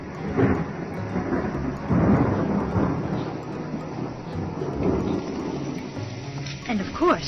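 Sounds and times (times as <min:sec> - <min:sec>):
long continuous rumble of thunder: 0:00.0 - 0:07.2.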